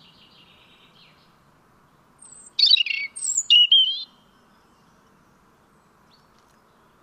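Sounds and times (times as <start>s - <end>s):
European robin Erithacus rubecula song: 0.0s - 7.0s.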